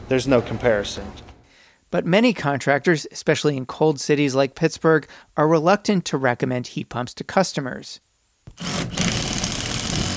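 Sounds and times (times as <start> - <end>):
speech: 0.1 - 1.3, 1.9 - 9.1
power tool cutting sheet metal from a natural gas furnace in a basement: 8.5 - 10.1.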